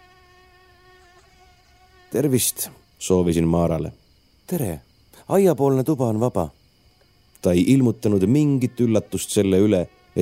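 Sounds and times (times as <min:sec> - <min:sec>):
mosquitoes whining outside by a house: 0:00.0 - 0:02.8, 0:06.2 - 0:10.2
speech: 0:02.1 - 0:06.6, 0:07.4 - 0:10.2.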